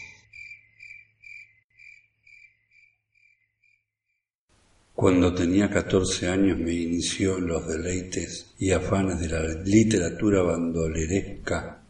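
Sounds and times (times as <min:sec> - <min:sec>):
crickets chirping: 0:00.0 - 0:04.2
speech: 0:05.0 - 0:11.7.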